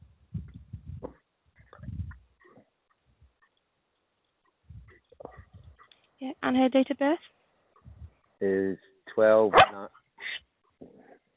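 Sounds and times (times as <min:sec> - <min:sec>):
speech: 0:06.2 - 0:07.4, 0:08.4 - 0:10.0
dog barking: 0:09.5 - 0:09.9.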